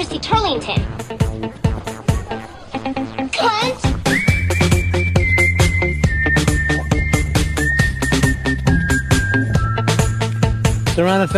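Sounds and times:
speech: 0.0 - 1.6, 11.0 - 11.3
busy backing track of thumping drums and bass: 0.0 - 11.3
shrill whistled melody: 3.9 - 11.3.

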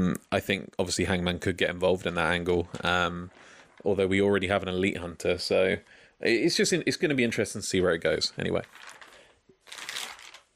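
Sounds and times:
speech: 0.0 - 9.0
paper rustling and crinkling: 8.5 - 10.5.

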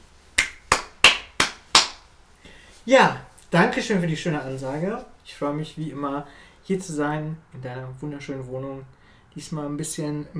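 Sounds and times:
person giving brief applause with hand claps: 0.4 - 2.1
speech: 2.9 - 10.3.

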